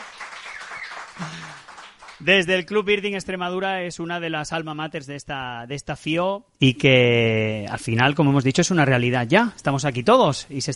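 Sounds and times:
audience applause: 0.0 - 2.2
speech: 2.2 - 10.7.

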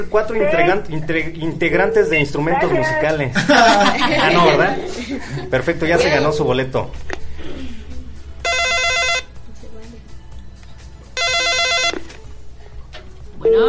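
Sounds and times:
speech: 0.0 - 7.2
laughter: 3.2 - 6.4
telephone ringing: 8.4 - 9.4, 11.2 - 12.1.

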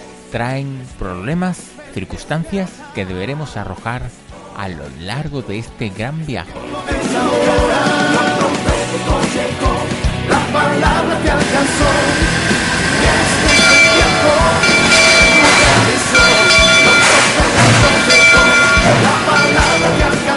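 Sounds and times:
speech: 0.3 - 9.5, 10.5 - 12.5
train rumbling: 11.5 - 20.0
train bell ringing: 13.4 - 20.2.

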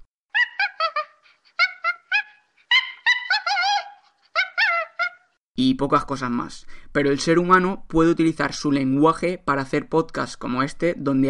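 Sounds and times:
chimpanzee short high-pitched hooting calls and wavering squeals: 0.3 - 5.4
speech: 5.6 - 11.2.

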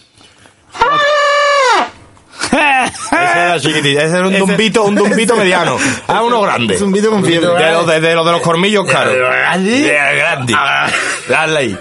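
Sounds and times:
person imitating an elephant trumpeting: 0.7 - 2.0, 8.9 - 10.4
laughter: 2.4 - 6.0
speech: 2.9 - 11.7.

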